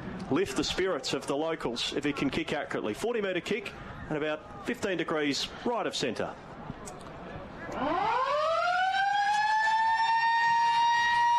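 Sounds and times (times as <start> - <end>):
speech: 0.3 - 6.5, 7.8 - 8.3
siren ending the first quarter of a football match: 7.8 - 11.3.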